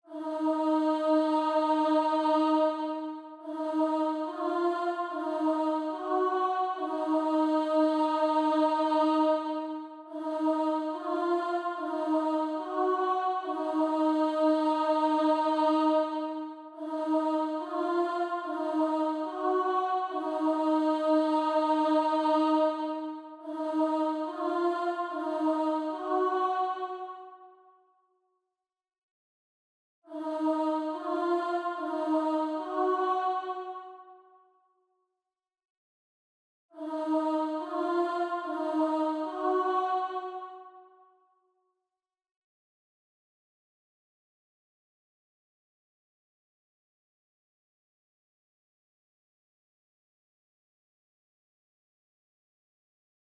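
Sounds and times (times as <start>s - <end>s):
choir singing in D sharp minor: 0.0s - 27.6s, 30.1s - 34.3s, 36.8s - 41.0s.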